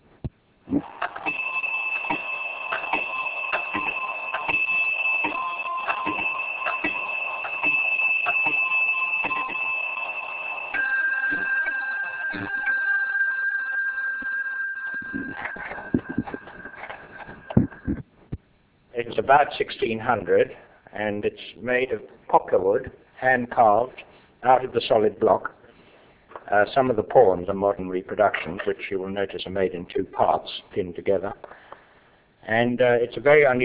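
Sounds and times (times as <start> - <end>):
quarter-chiming clock chiming: 0.9 - 18.0
speech: 19.3 - 25.5, 26.5 - 31.5, 32.5 - 33.6.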